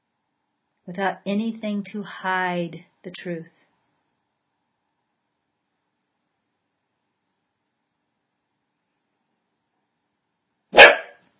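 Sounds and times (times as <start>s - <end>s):
speech: 0.9s - 3.6s
dog barking: 10.7s - 11.2s.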